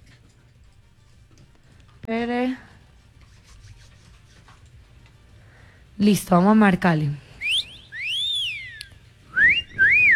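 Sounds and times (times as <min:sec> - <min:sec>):
speech: 0:02.1 - 0:02.7, 0:06.0 - 0:07.2
person whistling: 0:07.4 - 0:10.1.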